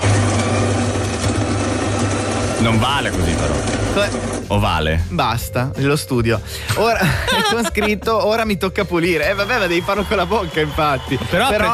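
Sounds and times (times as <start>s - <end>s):
espresso coffee machine brewing with buzzing pump drone: 0.0s - 4.5s
speech: 2.6s - 11.7s
laughter: 6.6s - 8.6s.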